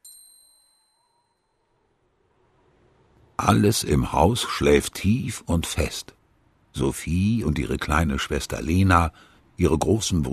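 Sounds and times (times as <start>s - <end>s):
small bell ringing softly: 0.0s - 1.8s
speech: 3.4s - 6.2s, 6.8s - 10.3s.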